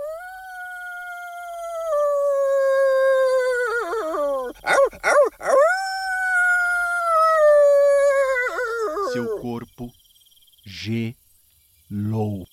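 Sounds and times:
werewolf howl: 0:00.0 - 0:09.5.

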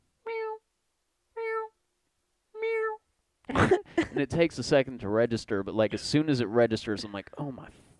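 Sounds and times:
human voice imitating a cat meowing while giving birth: 0:00.2 - 0:00.6, 0:01.4 - 0:01.8, 0:02.5 - 0:03.0
speech: 0:03.5 - 0:07.9.

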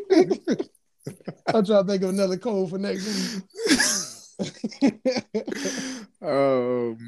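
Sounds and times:
laughter: 0:00.0 - 0:06.4
speech: 0:00.2 - 0:07.0
person with flu coughing over a phone call: 0:03.0 - 0:04.8, 0:05.4 - 0:06.0.

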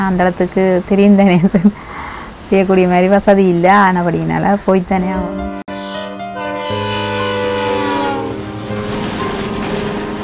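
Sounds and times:
speech: 0:00.0 - 0:05.6
train horn blaring: 0:05.4 - 0:10.2
train wheels and carriages rumbling past at Elephant Pass: 0:06.9 - 0:10.2.

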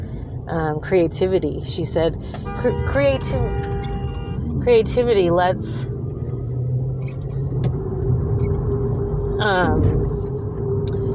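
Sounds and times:
low rumble of road traffic heard from inside a car: 0:00.0 - 0:11.1
speech: 0:00.5 - 0:03.8, 0:04.6 - 0:05.9, 0:09.4 - 0:10.2
car horn honking in traffic: 0:02.4 - 0:04.5.

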